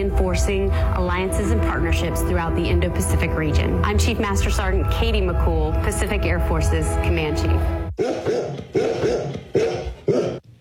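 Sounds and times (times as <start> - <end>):
speech: 0.4 - 8.2
golden retrievers barking: 7.9 - 10.4.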